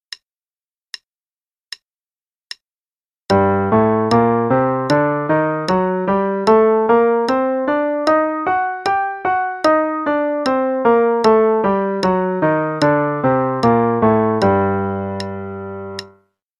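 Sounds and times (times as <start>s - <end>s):
G harmonic minor scale in eighth notes over two octaves: 3.3s - 16.2s.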